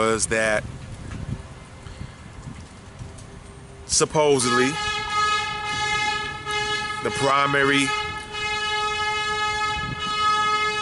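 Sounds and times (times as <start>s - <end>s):
speech: 0.0s - 0.8s, 3.9s - 5.0s, 7.0s - 8.0s
rail cars of a passing train rumbling: 0.0s - 10.8s
passing train sounding a car-like horn at a crossing: 4.4s - 10.8s.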